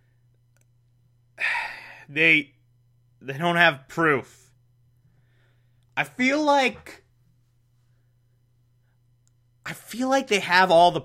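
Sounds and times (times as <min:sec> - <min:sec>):
faint steady hum: 0:00.0 - 0:11.0
person yawning: 0:01.4 - 0:02.0
speech: 0:02.1 - 0:02.6, 0:03.2 - 0:04.4, 0:06.0 - 0:07.0, 0:09.7 - 0:11.0.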